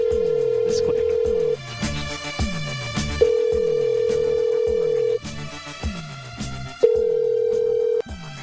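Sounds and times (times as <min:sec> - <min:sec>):
telephone ringback tone during a call-in: 0:00.0 - 0:01.6, 0:03.2 - 0:05.2, 0:06.8 - 0:08.0
rhythmic backing beat of repeated low thumps: 0:00.0 - 0:07.2, 0:08.0 - 0:08.4.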